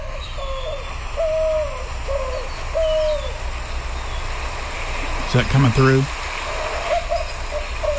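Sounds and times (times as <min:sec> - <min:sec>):
White-winged dove cooing played back from a cell phone: 0:00.0 - 0:03.5, 0:06.5 - 0:07.9
hiss and hum: 0:00.0 - 0:07.9
speech: 0:05.3 - 0:06.2.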